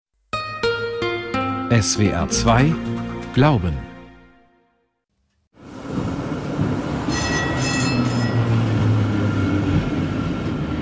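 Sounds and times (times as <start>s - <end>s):
speech: 1.7s - 3.9s
steady rumble inside a moving tram: 5.6s - 10.8s
tram metallic wheel squeals: 7.0s - 9.0s.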